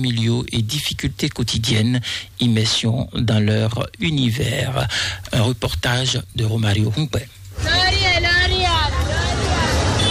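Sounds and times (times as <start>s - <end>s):
speech: 0.0s - 7.7s
murmur of overlapping voices from passers-by: 7.6s - 10.0s.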